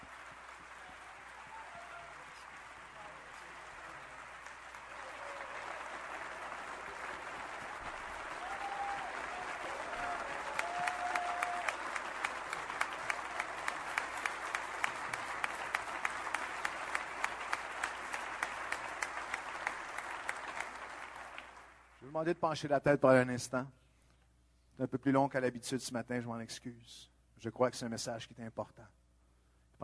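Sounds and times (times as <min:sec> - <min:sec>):
congregation applauding in a church: 0:00.0 - 0:22.3
speech: 0:22.1 - 0:23.8, 0:24.8 - 0:29.0.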